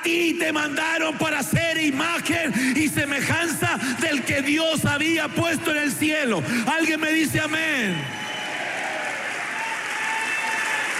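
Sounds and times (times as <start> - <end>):
speech: 0.0 - 8.2
congregation clapping at a church service: 7.9 - 10.9.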